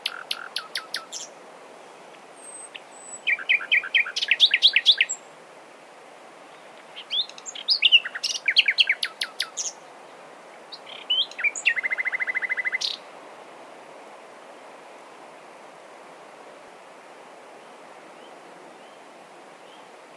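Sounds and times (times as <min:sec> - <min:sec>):
common nightingale song, Luscinia megarhynchos: 0:00.0 - 0:05.3, 0:06.5 - 0:13.1, 0:17.3 - 0:20.1.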